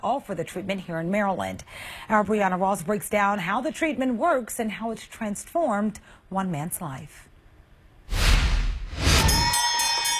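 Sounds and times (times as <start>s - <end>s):
speech: 0.0s - 7.3s
doctors and nurses cheering and applauding at University of Maryland Medical Center: 9.0s - 10.1s
patient ringing a bell marking the end of treatment: 9.2s - 10.1s.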